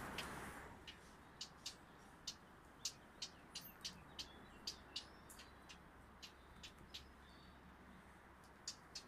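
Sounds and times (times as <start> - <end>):
blackcap: 0.1 - 9.0.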